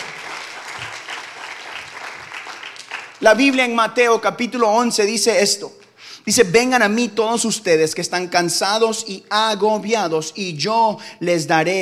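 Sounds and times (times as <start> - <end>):
audience clapping loudly: 0.0 - 3.8
speech: 3.2 - 11.8.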